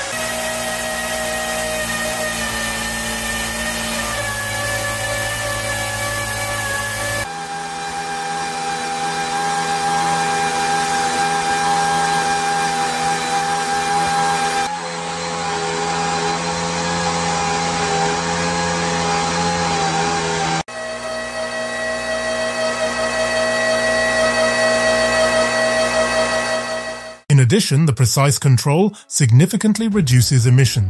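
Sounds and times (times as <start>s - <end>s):
multi-fuel engine running with droning harmonic whine: 0.2s - 27.2s
speech: 27.5s - 30.8s.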